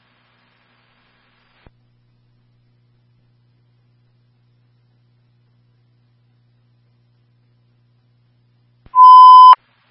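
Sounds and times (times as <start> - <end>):
high electronic radio dispatch alert tone for a fire alarm: 9.0 - 9.6.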